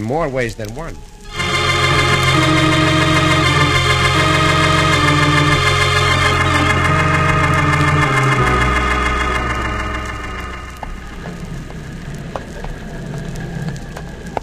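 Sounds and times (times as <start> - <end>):
speech: 0.0 - 1.1
boat engine droning: 1.3 - 12.1.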